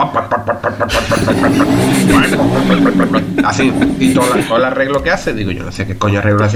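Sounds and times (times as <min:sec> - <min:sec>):
laughter: 0:00.0 - 0:05.1
speech: 0:00.0 - 0:06.5
man vocally imitating a big motorcycle starting and revving: 0:00.8 - 0:04.8.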